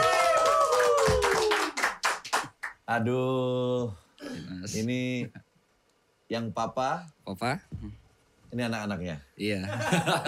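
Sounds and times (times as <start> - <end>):
falling whoop: 0.0 - 1.7
hand clapping applause from a few people: 0.0 - 2.8
speech: 2.9 - 5.5, 6.3 - 10.2
laughter: 9.7 - 10.2.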